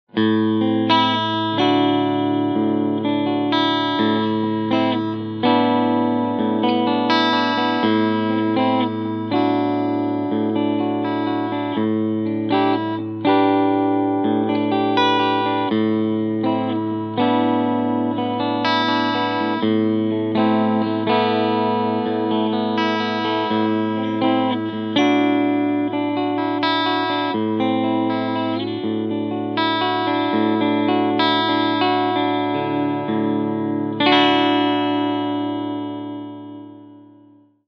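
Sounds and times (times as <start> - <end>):
Epiphone Les Paul Classic Worn electric guitar with overdrive and clean sound: 0.0 - 37.6.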